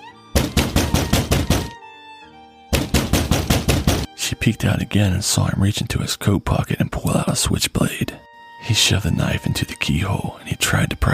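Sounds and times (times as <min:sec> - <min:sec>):
heavy rapid kicking and pounding on a door: 0:00.4 - 0:01.8, 0:02.7 - 0:04.1
speech: 0:04.2 - 0:11.1.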